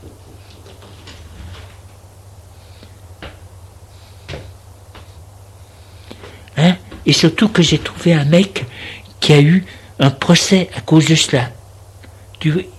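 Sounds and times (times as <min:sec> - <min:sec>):
steady low hum: 0:00.0 - 0:12.7
door being opened: 0:06.8 - 0:08.4
speech: 0:07.1 - 0:11.6, 0:12.4 - 0:12.7.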